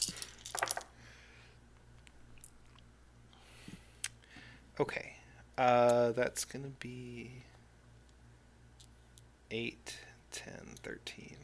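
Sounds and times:
handful of dice clattering onto a hard surface: 0.0s - 0.9s
speech: 4.8s - 7.5s, 9.5s - 11.4s.

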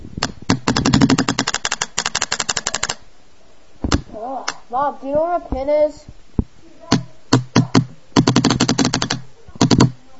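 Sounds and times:
paintball gun firing: 0.2s - 3.0s, 7.0s - 10.0s
speech: 4.7s - 6.2s.

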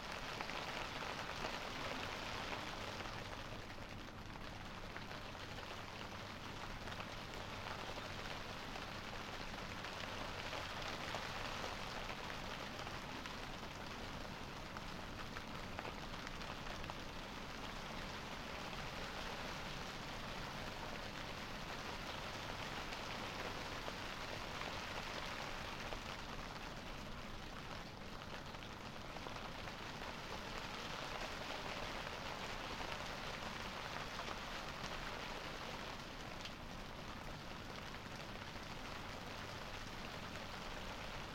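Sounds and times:
gentle rain falling on an empty garden: 0.0s - 41.3s.

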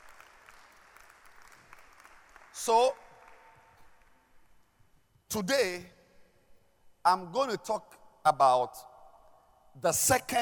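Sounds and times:
room full of people applauding: 0.0s - 4.2s
speech: 2.6s - 3.0s, 5.3s - 6.0s, 7.0s - 8.9s, 9.8s - 10.3s.

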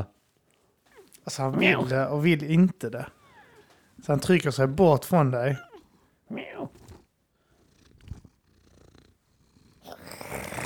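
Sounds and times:
cat meowing: 1.0s - 1.9s, 5.5s - 6.9s
cat purring: 1.0s - 2.1s, 3.0s - 10.6s
speech: 1.2s - 3.2s, 4.0s - 5.7s, 6.3s - 6.8s.

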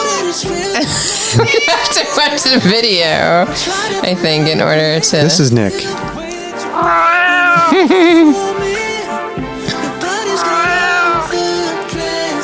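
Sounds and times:
laughter: 0.0s - 11.7s
musical backing of a played song recording: 0.0s - 12.4s
speech: 0.4s - 6.2s, 6.8s - 8.7s
several cats meowing in a played song recording: 6.8s - 8.4s, 10.3s - 11.4s.

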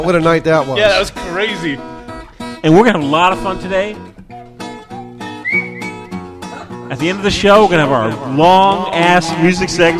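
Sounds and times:
speech: 0.0s - 1.9s, 2.6s - 4.1s, 6.9s - 9.9s
bouncy instrumental backing with regular chord hits: 0.0s - 9.9s
slide whistle sweeping upward: 5.2s - 6.2s
laughter: 6.5s - 9.9s.

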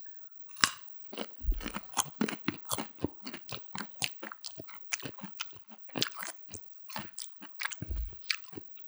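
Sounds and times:
crunching of raw carrots dipped in ketchup being chewed: 0.5s - 8.8s
low thumps: 1.4s - 1.8s, 7.9s - 8.2s.

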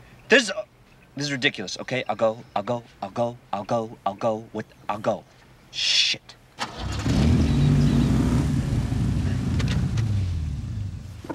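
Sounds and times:
speech: 0.3s - 6.4s
car engine humming: 6.6s - 11.2s.

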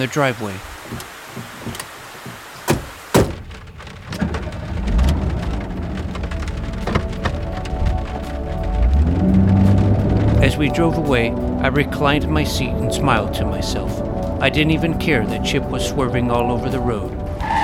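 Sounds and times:
speech: 0.0s - 1.1s, 10.6s - 17.2s
rain falling outdoors: 0.0s - 17.6s
knocks: 0.8s - 4.5s
low rumble: 3.5s - 17.4s.

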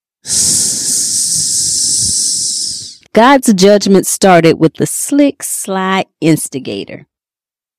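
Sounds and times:
snake hissing: 0.2s - 3.0s
speech: 3.2s - 7.1s.

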